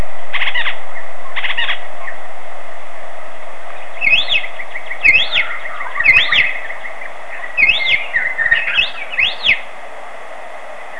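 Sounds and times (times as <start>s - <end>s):
steady low hum: 0.0s - 10.9s
elepaio whistled song in Hawaii: 0.3s - 2.2s, 3.8s - 9.6s.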